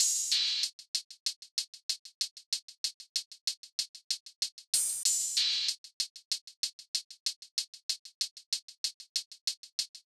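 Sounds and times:
drum loop: 0.0s - 0.6s
hi-hat: 0.0s - 10.0s.

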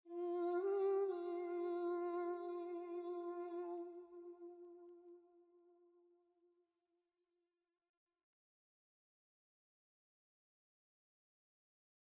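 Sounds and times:
vocals in G minor at 110 BPM: 0.0s - 5.6s.

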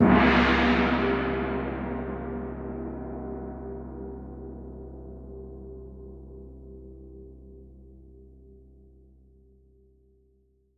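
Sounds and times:
gong in C: 0.0s - 7.4s.

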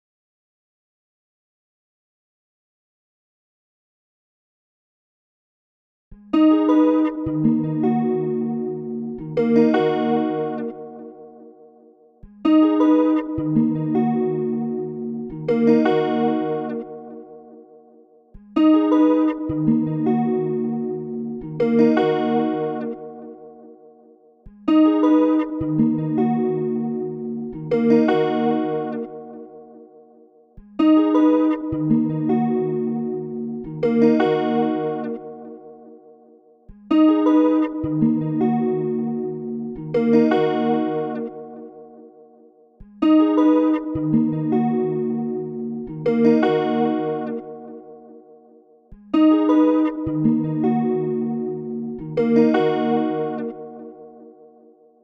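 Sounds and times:
guitar chords melody loop in D sharp minor: 6.2s - 55.0s.

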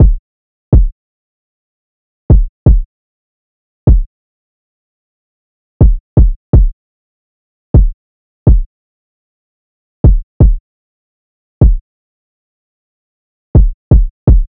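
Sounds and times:
kick drum loop: 0.0s - 0.9s, 2.3s - 2.9s, 3.9s - 4.1s, 5.8s - 6.8s, 7.8s - 8.7s, 10.0s - 10.6s, 11.6s - 11.8s, 13.6s - 14.5s.

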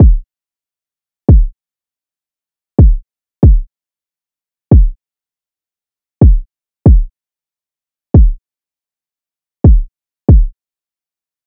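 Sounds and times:
kick drum loop: 0.0s - 0.2s, 1.3s - 1.5s, 2.8s - 3.7s, 4.7s - 5.0s, 6.2s - 7.1s, 8.2s - 8.4s, 9.6s - 10.5s.

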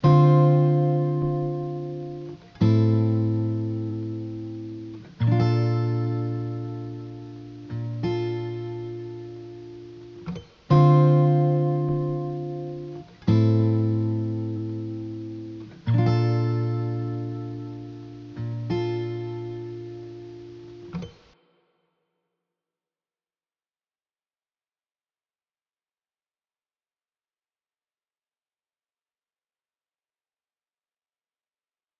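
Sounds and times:
wet acoustic guitar loop in D minor: 0.0s - 21.4s.

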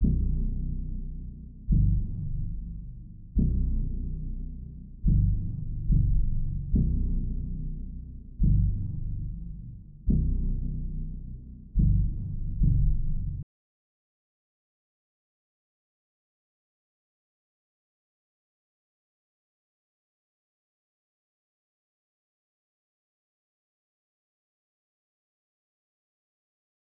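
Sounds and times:
bass in B minor: 0.0s - 13.5s.

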